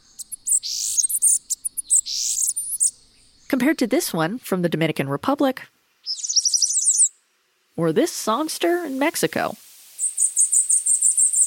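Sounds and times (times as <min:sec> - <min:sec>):
bananaquit singing a rapid high-pitched song in Venezuelan dialect: 0:00.0 - 0:03.8, 0:06.0 - 0:07.2, 0:10.0 - 0:11.4
speech: 0:03.6 - 0:05.8, 0:07.8 - 0:09.6.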